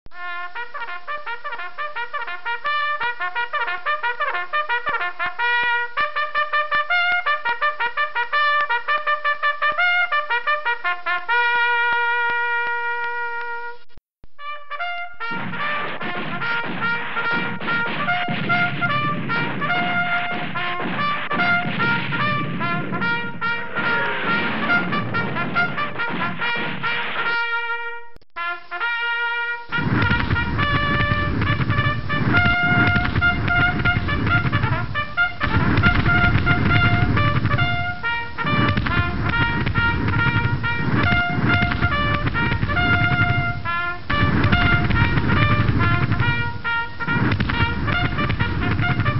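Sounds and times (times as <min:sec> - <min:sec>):
war trumpets: 0:00.1 - 0:49.1.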